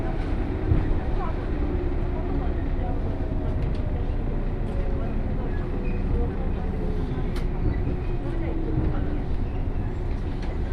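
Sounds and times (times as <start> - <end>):
117 series local train rumbling on the Kosei Line: 0.0 - 10.7.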